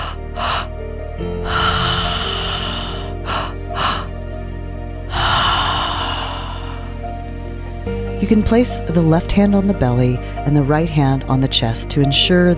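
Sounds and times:
breathwork-style mouth breathing with two inhales and a relaxed exhale: 0.0s - 0.8s, 1.4s - 4.2s, 5.1s - 7.1s
speech: 8.2s - 12.5s.

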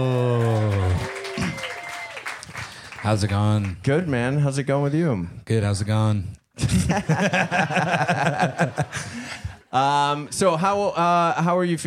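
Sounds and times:
audience clapping: 0.0s - 4.0s
speech: 3.1s - 11.8s
laughter: 6.6s - 9.7s.

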